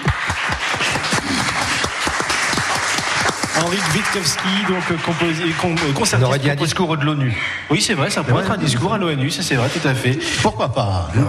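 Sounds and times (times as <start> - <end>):
audience applause: 0.0 - 6.5
speech: 3.6 - 11.2.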